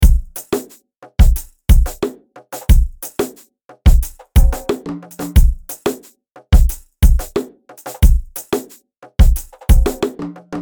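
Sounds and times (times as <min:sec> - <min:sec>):
ethnic music at 90 BPM: 0:00.0 - 0:10.6.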